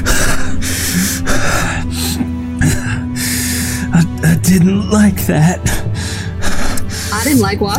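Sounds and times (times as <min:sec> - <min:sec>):
voice imitating heavy gasping breaths: 0:00.0 - 0:04.0, 0:05.6 - 0:07.4
speech: 0:04.5 - 0:05.8, 0:07.3 - 0:07.7.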